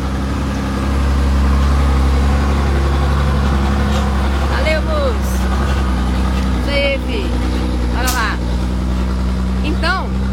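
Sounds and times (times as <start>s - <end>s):
heavy truck rumbling past: 0.0s - 10.3s.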